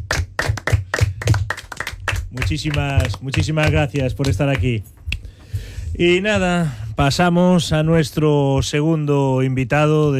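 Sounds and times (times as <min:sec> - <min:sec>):
applause: 0:00.0 - 0:04.8
speech: 0:02.4 - 0:05.0, 0:06.0 - 0:10.1.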